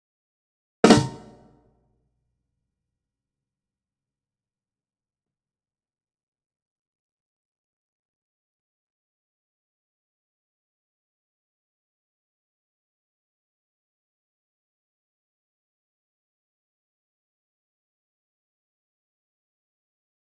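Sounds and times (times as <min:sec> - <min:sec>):
snare drum recorded from the top: 0:00.8 - 0:01.4.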